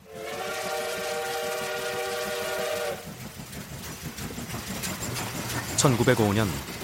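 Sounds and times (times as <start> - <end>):
train whistle: 0.0 - 3.1
Gyeongbu Line train rumbling and clattering along the tracks: 0.0 - 6.8
speech: 5.8 - 6.8.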